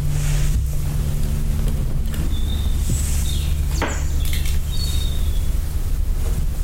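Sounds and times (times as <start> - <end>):
steady wind blowing: 0.0 - 6.6.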